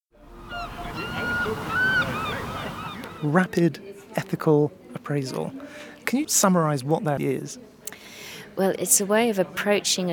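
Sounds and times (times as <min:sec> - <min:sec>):
gulls calling: 0:00.2 - 0:03.5
seaside waves and surf: 0:00.2 - 0:03.5
speech: 0:03.2 - 0:10.1.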